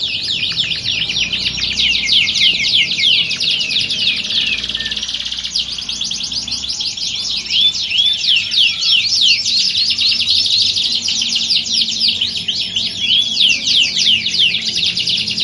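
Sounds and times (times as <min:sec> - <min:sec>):
Belgian canary warm-up song: 0:00.0 - 0:15.4.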